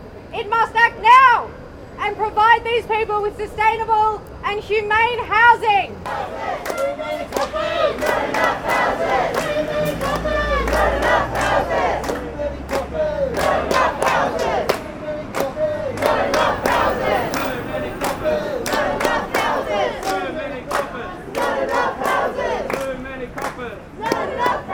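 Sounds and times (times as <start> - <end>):
speech: 0.3 - 12.0
large protest crowd at a rally against forced evictions chanting and cheering: 5.9 - 24.7
sharp rhythmic claps or thumps: 6.0 - 24.7.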